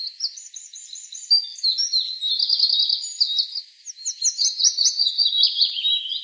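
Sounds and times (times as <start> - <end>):
willow warbler singing sweet high descending phrases: 0.0 - 6.2.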